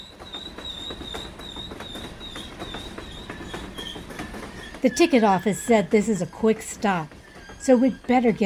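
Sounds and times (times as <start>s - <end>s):
thin high metallic squeal of train: 0.0s - 8.4s
train wheels clacking over the rails: 0.0s - 8.4s
speech: 4.8s - 8.4s.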